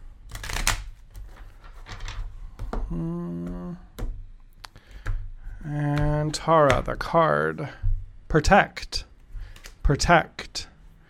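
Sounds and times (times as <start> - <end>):
deck of cards being shuffled: 0.2 - 2.2
speech: 2.9 - 3.5, 5.6 - 9.1, 9.9 - 10.7.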